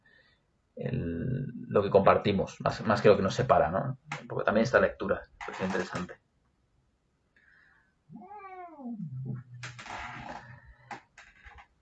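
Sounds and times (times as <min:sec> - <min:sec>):
speech: 0:00.8 - 0:06.2
female cat yowling: 0:08.1 - 0:09.6.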